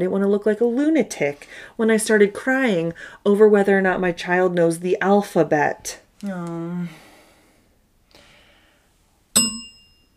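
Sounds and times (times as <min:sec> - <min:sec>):
speech: 0:00.0 - 0:07.0, 0:09.4 - 0:09.7
bell ding: 0:09.4 - 0:10.1.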